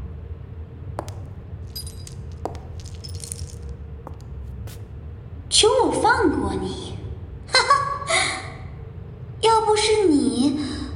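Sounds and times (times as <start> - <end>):
low steady rumble: 0.0 - 10.9
custom-made metal chains clinking on a struggling person: 1.0 - 4.2
speech: 5.6 - 6.8.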